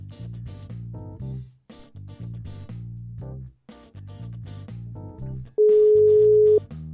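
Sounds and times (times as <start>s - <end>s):
upbeat instrumental music: 0.0s - 6.9s
phone ringback tone of an outgoing call: 5.6s - 6.6s.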